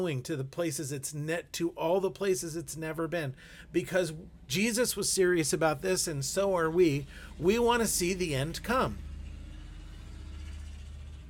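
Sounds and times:
speech: 0.0s - 9.1s
car with loud throaty exhaust driving past: 5.7s - 11.2s.

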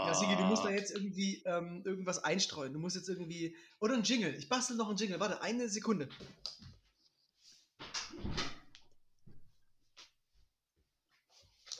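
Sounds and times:
speech: 0.1s - 6.7s
door being closed: 7.9s - 8.7s.

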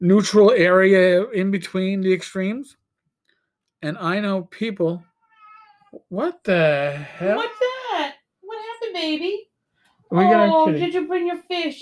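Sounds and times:
speech: 0.0s - 2.8s, 3.8s - 5.1s, 5.9s - 8.1s, 8.9s - 9.5s, 10.1s - 11.8s
cat meowing: 5.0s - 6.0s, 7.2s - 8.0s.

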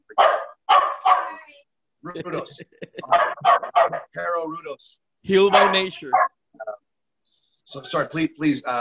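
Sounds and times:
pet dogs barking: 0.0s - 1.4s, 3.0s - 4.2s, 5.4s - 6.4s
laughter: 2.0s - 3.4s
speech: 2.0s - 6.3s, 7.7s - 8.7s.

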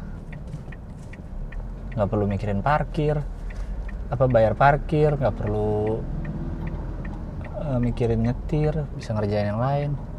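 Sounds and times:
city bus engine drone: 0.0s - 10.1s
speech: 2.0s - 3.4s, 4.1s - 6.2s, 7.7s - 10.1s.

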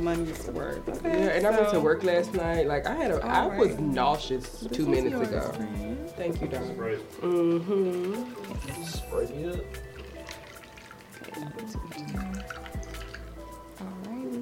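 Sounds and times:
speech: 0.0s - 9.9s
Sprite pouring into a glass: 8.3s - 14.1s.

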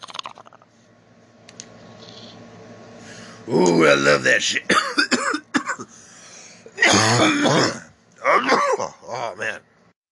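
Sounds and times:
speech: 3.5s - 4.6s
person coughing after taking a hit of weed: 4.7s - 5.9s, 6.7s - 9.0s.

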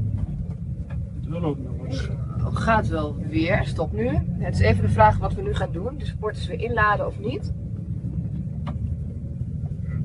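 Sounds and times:
bus engine rumbling on a mountain road: 0.0s - 10.0s
speech: 1.3s - 7.6s.

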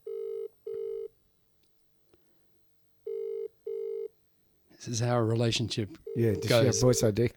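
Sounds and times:
phone ringback tone: 0.0s - 1.1s, 3.1s - 4.1s, 6.0s - 7.0s
speech: 4.8s - 7.3s.

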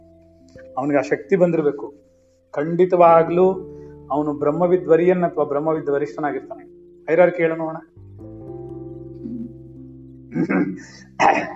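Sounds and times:
speech: 0.6s - 8.0s, 10.3s - 11.5s
person clearing throat during a spiritual lecture: 10.3s - 11.5s
person coughing during a spiritual lecture: 10.3s - 11.5s.

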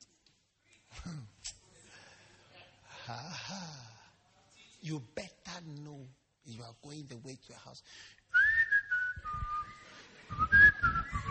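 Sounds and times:
speech: 3.1s - 3.9s, 4.8s - 8.2s, 10.3s - 11.2s
person whistling a wavering high tune: 8.3s - 11.2s.

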